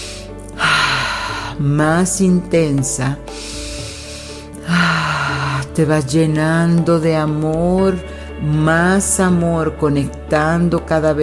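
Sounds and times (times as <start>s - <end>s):
deep forceful breath: 0.0s - 1.7s, 3.3s - 5.7s
speech: 1.6s - 3.5s, 5.8s - 11.2s.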